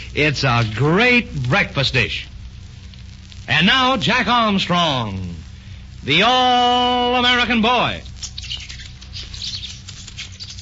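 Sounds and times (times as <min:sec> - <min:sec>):
low hum: 0:00.0 - 0:10.6
speech: 0:00.1 - 0:02.3, 0:03.5 - 0:05.4, 0:06.0 - 0:08.1
people mimicking monkeys chattering and squeaking at night in a thicket: 0:08.2 - 0:10.6.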